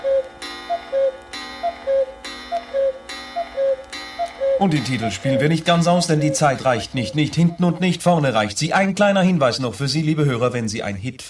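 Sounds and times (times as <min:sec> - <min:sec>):
clock ticking and chiming at twelve noon: 0:00.0 - 0:08.5
speech: 0:04.6 - 0:11.2.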